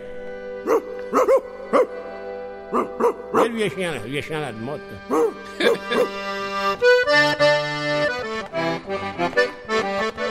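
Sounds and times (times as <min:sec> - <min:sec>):
steady musical backdrop: 0:00.0 - 0:10.3
angry dog barking: 0:00.6 - 0:02.0, 0:02.7 - 0:03.6
speech: 0:02.7 - 0:06.8
laughter: 0:05.1 - 0:06.3.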